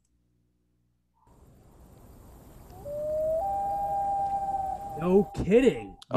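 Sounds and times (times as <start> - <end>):
black-throated loon haunting call: 2.6 - 6.0
speech: 5.0 - 6.1.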